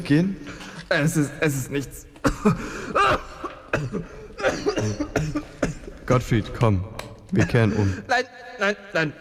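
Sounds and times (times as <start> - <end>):
speech: 0.0 - 9.2
strained gasping breaths: 0.4 - 0.9, 2.2 - 6.0
person coughing harshly: 2.2 - 6.0.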